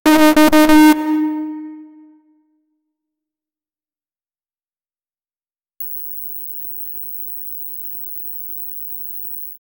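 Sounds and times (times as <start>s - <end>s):
Japanese game show incorrect answer sound: 0.0s - 2.1s.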